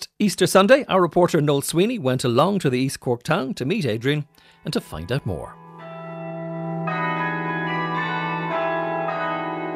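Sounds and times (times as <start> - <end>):
speech: 0.2 - 5.6
carillon bells of Cobh ringing during a weekly recital: 4.4 - 9.7.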